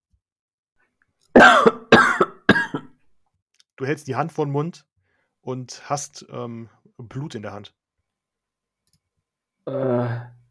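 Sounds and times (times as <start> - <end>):
harsh rasping wheezy coughs: 1.3 - 3.0
speech: 3.8 - 7.8, 9.6 - 10.4.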